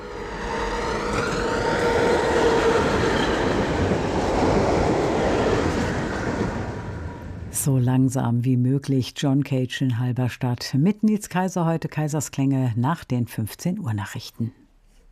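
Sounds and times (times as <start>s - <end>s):
faint metallic whine: 0.0s - 4.2s
tram wheels rumbling and rattling on rails in a city: 0.0s - 7.7s
speech: 7.6s - 14.6s.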